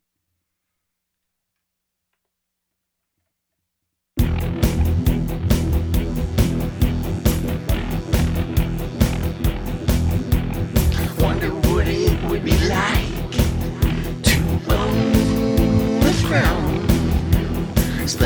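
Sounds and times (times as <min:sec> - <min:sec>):
alternative rock music: 0:04.2 - 0:18.2.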